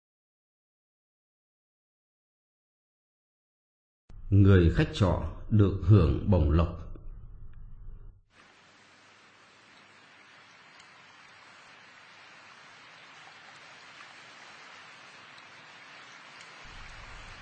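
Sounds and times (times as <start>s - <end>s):
speech: 4.3s - 6.8s
brief low rumble: 6.8s - 8.2s
steady rain falling on a heavy rainy October day: 8.3s - 17.4s.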